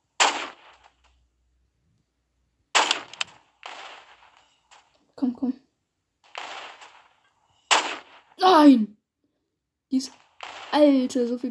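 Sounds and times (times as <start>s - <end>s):
sniper rifle shots in a video game: 0.0s - 1.0s, 2.7s - 4.9s, 6.2s - 8.4s, 10.1s - 11.0s
speech: 5.2s - 5.6s, 8.6s - 9.0s, 9.9s - 11.5s.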